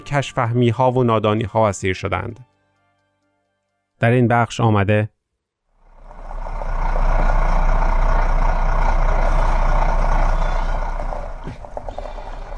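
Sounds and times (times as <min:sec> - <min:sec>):
speech: 0:00.1 - 0:02.5, 0:04.0 - 0:05.2
heavy truck engine roaring over rocky mountain road: 0:05.8 - 0:12.5
clunk: 0:10.4 - 0:12.5.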